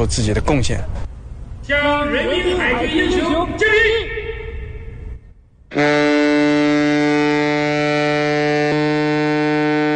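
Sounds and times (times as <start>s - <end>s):
speech: 0.0s - 1.1s, 1.7s - 4.2s, 5.7s - 6.3s
ship's whistle long blast during Chinese navy ceremony: 5.7s - 9.9s.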